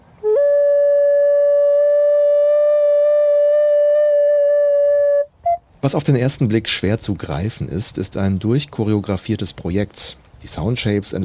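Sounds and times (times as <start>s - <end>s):
recorder playing ethereal tones at a sculpture-garden performance: 0.2s - 5.6s
speech: 5.8s - 11.2s.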